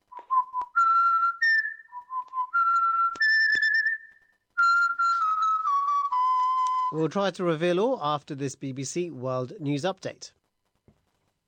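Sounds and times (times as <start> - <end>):
whistled tune: 0.1 - 7.1
speech: 6.9 - 10.4.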